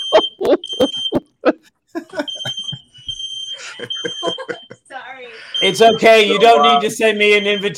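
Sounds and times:
smoke alarm with piercing high-pitched tone: 0.0s - 1.4s, 2.3s - 4.8s, 5.4s - 7.7s
laughter: 0.0s - 7.2s
speech: 5.6s - 7.7s.

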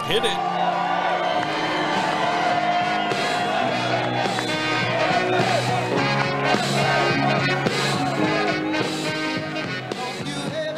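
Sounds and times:
large crowd cheering and shouting at a political rally: 0.0s - 10.7s
steady tonal backdrop of music: 0.0s - 10.7s
speech: 0.1s - 0.8s.

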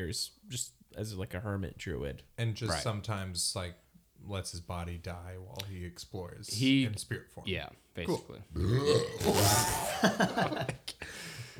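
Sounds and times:
speech: 0.0s - 11.5s
short voiced bursts: 2.7s - 3.0s
long loud burp: 8.1s - 10.0s
laughter: 9.3s - 11.5s.

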